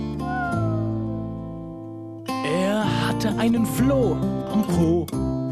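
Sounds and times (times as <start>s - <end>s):
voice imitating a Jack Russell dog's whine: 0.2s - 1.1s
speech: 3.2s - 5.4s.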